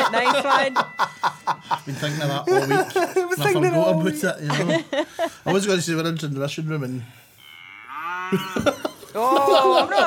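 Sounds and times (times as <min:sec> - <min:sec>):
laughter: 0:00.0 - 0:05.6, 0:08.3 - 0:10.0
speech: 0:00.1 - 0:07.3, 0:08.3 - 0:10.0
cow mooing: 0:07.3 - 0:08.7.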